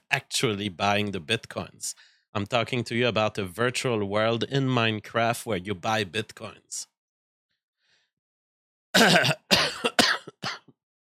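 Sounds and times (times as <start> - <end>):
speech: 0.4 - 6.9, 9.0 - 9.4
person coughing: 9.0 - 10.7.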